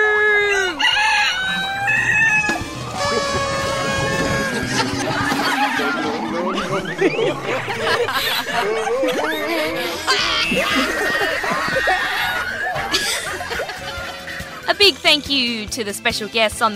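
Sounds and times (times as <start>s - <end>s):
rooster crowing: 0.2s - 14.6s
fowl clucking and chattering: 0.5s - 14.7s
snickering laughter: 3.0s - 14.8s
speech: 15.1s - 16.7s.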